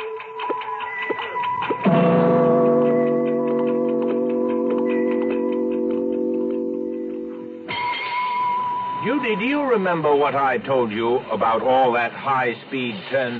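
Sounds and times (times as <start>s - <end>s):
clock ticking: 0.0s - 7.8s
long humming sustained ringing tone: 0.9s - 9.7s
speech: 9.3s - 13.3s.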